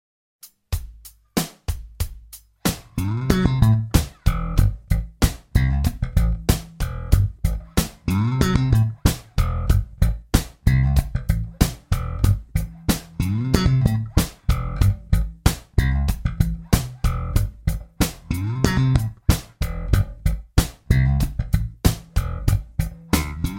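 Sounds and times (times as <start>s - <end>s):
groovy slap bass in A: 2.7s - 23.5s.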